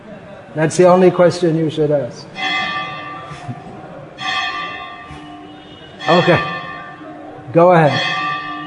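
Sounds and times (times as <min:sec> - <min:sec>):
speech: 0:00.5 - 0:02.4, 0:06.1 - 0:06.5, 0:07.5 - 0:08.2
bell ringing with bright metallic tone: 0:02.4 - 0:03.6, 0:04.2 - 0:08.6.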